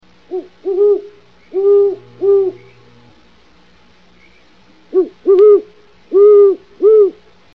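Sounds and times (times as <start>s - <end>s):
great horned owl hooting in northwest California: 0.3s - 3.0s, 4.2s - 7.3s.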